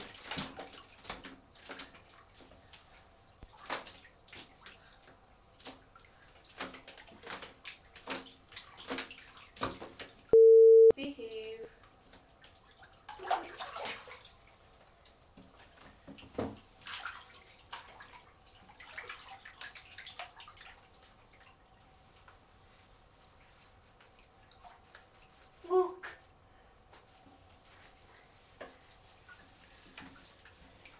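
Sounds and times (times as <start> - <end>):
bath water splashing and sloshing in a bathtub: 0.0 - 10.3, 11.4 - 30.9
steady electronic beep: 10.4 - 10.9.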